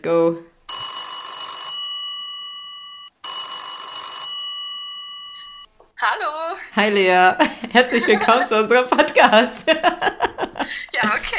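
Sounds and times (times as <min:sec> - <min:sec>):
speech: 0:00.0 - 0:00.5, 0:06.8 - 0:10.2
telephone ring tone during an outgoing call through a phone line: 0:00.7 - 0:05.7
laughter: 0:07.3 - 0:11.3.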